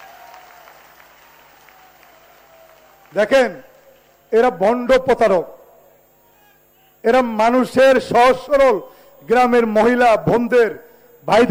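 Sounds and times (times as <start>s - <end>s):
audience applauding at a political inauguration gathering: 0.0s - 4.3s
speech: 3.1s - 3.7s, 4.3s - 5.6s, 7.0s - 11.5s.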